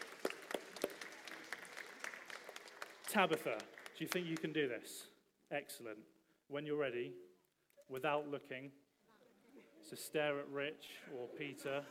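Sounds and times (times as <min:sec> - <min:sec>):
small audience clapping: 0:00.0 - 0:04.7
speech: 0:03.1 - 0:07.3, 0:07.9 - 0:08.8, 0:09.8 - 0:11.8.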